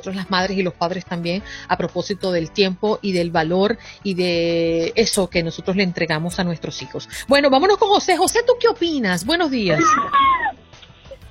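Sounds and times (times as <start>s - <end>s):
speech: 0.0s - 10.4s
baby screaming: 9.7s - 10.6s.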